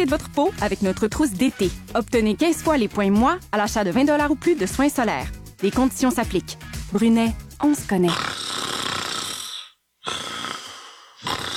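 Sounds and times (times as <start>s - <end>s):
speech: 0.0s - 8.3s
person snoring while asleep: 8.0s - 11.5s.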